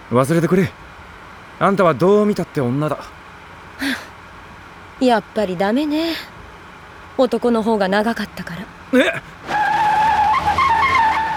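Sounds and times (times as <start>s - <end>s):
speech: 0.1s - 0.9s, 1.6s - 3.2s, 5.0s - 6.3s, 7.2s - 9.4s
car tires squealing as the car swerves: 9.0s - 11.3s.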